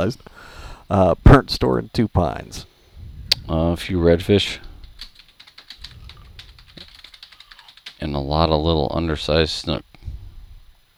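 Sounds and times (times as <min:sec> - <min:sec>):
speech: 0:00.0 - 0:02.7, 0:03.3 - 0:04.7, 0:08.0 - 0:09.9
low rumble: 0:02.3 - 0:09.4
typing on a computer keyboard: 0:04.5 - 0:08.4.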